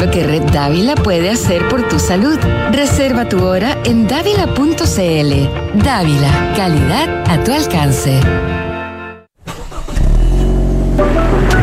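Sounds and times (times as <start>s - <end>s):
speech: 0.0s - 8.6s
car engine cranking, starting and revving: 9.4s - 11.6s.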